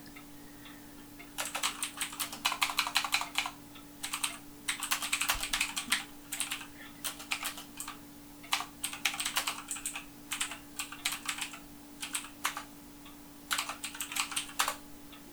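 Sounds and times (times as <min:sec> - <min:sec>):
faint steady electrical hum: 0:00.0 - 0:15.3
rapid typing on a computer keyboard: 0:01.4 - 0:12.7, 0:13.5 - 0:14.8.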